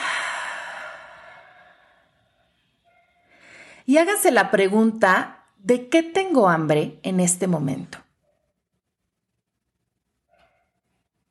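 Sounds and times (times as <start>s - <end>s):
deep breath in through the nose: 0.0s - 2.2s
long airy exhale through the mouth: 0.0s - 2.2s
speech: 3.9s - 8.0s.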